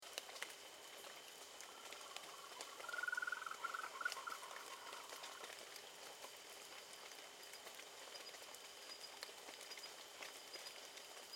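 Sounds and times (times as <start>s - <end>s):
faint clicks and patter: 0.0s - 11.3s
frog call pulsed notes: 1.7s - 5.5s.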